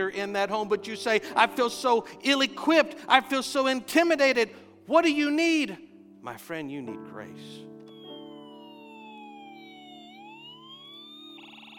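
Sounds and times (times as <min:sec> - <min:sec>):
speech: 0:00.0 - 0:07.7
ambulance siren wailing: 0:07.9 - 0:11.7.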